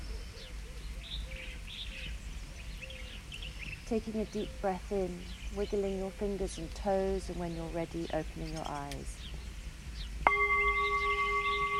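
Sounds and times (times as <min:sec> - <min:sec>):
birds chirping and warbling outdoors: 0:00.0 - 0:11.7
low steady rumble: 0:00.0 - 0:11.7
speech: 0:03.9 - 0:09.2
low whistled note: 0:10.2 - 0:11.7.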